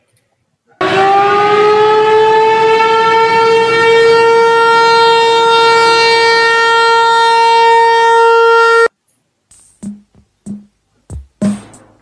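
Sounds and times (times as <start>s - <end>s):
loud siren blaring: 0.8s - 8.9s.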